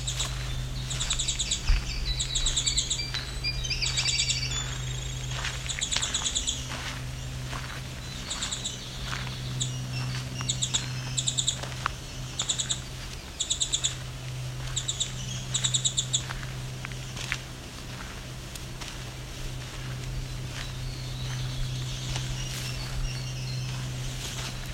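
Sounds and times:
Winter Wren song: 0.0 - 24.7
steady low hum: 0.0 - 24.7.

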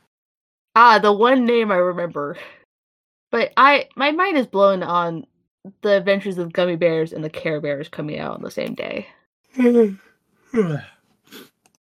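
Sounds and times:
speech: 0.8 - 2.6, 3.3 - 11.5
drawn-out yawn with voiced groan sliding downward: 9.6 - 10.0, 10.6 - 10.9
brief vocal murmur: 9.6 - 11.5.

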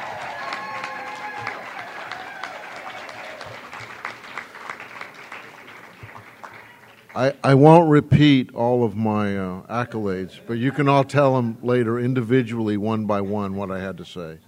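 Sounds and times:
audience applause: 0.0 - 7.4
speech: 7.2 - 14.4.

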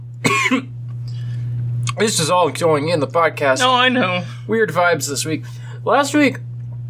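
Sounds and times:
low hum: 0.0 - 6.8
person coughing after choking on coffee: 0.2 - 0.8
speech: 0.5 - 0.8, 2.0 - 6.5.

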